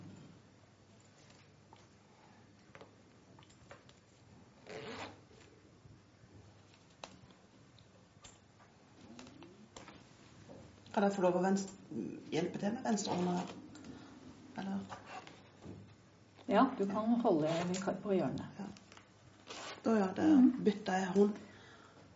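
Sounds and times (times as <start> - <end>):
zippers being closed and opened: 4.6 - 5.2, 12.9 - 13.6, 17.4 - 17.9, 19.4 - 19.9
speech: 11.0 - 13.6, 16.5 - 18.5, 19.8 - 21.4.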